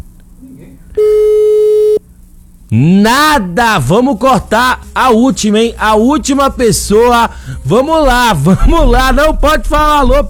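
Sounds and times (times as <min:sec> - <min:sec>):
telephone busy signal: 0:01.0 - 0:02.0
speech: 0:02.7 - 0:10.2.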